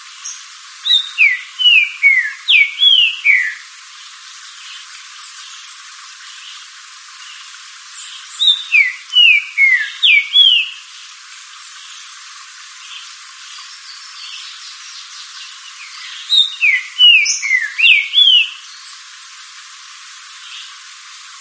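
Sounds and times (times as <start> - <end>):
Green-winged saltator song: 0.2 - 3.7, 8.0 - 10.8, 13.7 - 19.0.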